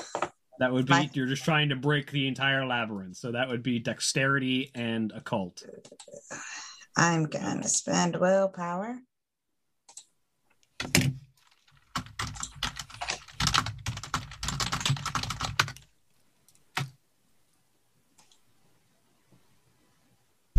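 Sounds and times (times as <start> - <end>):
speech: 0.6 - 9.1, 10.8 - 11.2
fierce typing on a computer keyboard: 10.8 - 15.9, 16.5 - 17.0.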